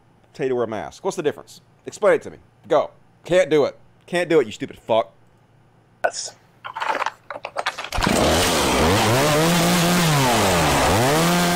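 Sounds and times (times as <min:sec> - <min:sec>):
speech: 0:00.4 - 0:05.2, 0:06.0 - 0:07.0
clattering bursts: 0:06.6 - 0:08.8
chainsaw cutting through a face mask: 0:07.9 - 0:11.5.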